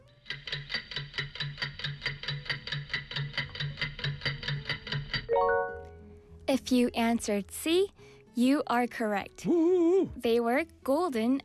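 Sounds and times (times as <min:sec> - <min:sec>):
fast countdown clock ticking: 0:00.2 - 0:05.3
speech: 0:06.5 - 0:11.4.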